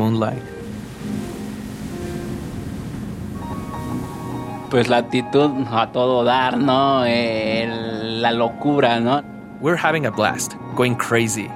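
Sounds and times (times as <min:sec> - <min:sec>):
ocean waves breaking against a rocky shore: 0:00.0 - 0:05.5
speech: 0:00.1 - 0:01.2, 0:04.7 - 0:11.5.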